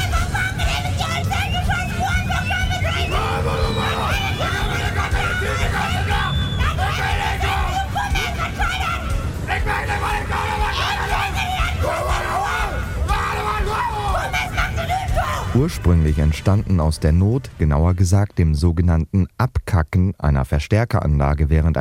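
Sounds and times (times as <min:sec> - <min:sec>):
large crowd shouting at dialect screaming festival in Bunkenstedt: 0:00.0 - 0:15.7
scattered screams: 0:00.6 - 0:15.7
speech: 0:15.6 - 0:21.7.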